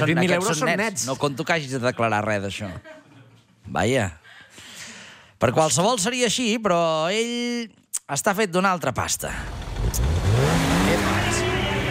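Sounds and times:
speech: 0:00.0 - 0:03.0, 0:03.7 - 0:04.2, 0:05.4 - 0:11.1
car engine revving: 0:09.4 - 0:11.8.

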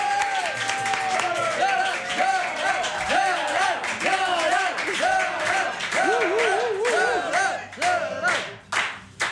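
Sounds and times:
studio audience whoops and cheering: 0:00.0 - 0:03.2, 0:05.9 - 0:07.6
studio audience applause welcoming a guest: 0:00.0 - 0:09.3.

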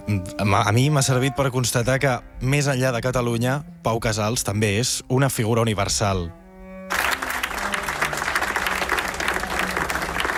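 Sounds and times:
speech: 0:00.1 - 0:07.0
large concert audience applauding in an ovation: 0:06.9 - 0:10.3
faint murmur of the concert crowd: 0:07.5 - 0:10.3.

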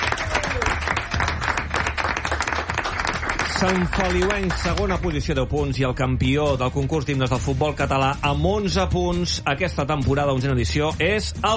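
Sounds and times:
crowd applauding: 0:00.0 - 0:05.3
speech: 0:03.6 - 0:11.5.

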